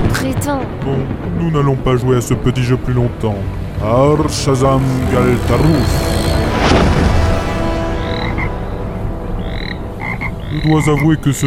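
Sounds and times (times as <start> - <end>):
speech: 0.4 - 6.9, 10.5 - 11.4
dense busy sound-effects bed: 3.0 - 11.4
brief sweeping whoosh: 3.2 - 10.0
frog croaking loudly: 3.8 - 8.6, 9.3 - 11.4.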